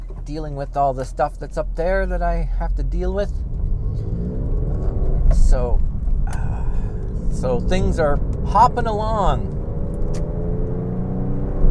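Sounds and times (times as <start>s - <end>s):
speech: 0.3s - 3.6s, 5.3s - 6.5s, 7.3s - 10.2s
cars speeding past on a neighbourhood road: 3.4s - 11.6s.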